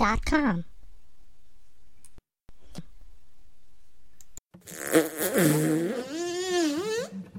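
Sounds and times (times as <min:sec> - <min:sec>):
speech: 0:00.0 - 0:00.7, 0:04.7 - 0:06.0
long wavering fart: 0:04.6 - 0:07.2.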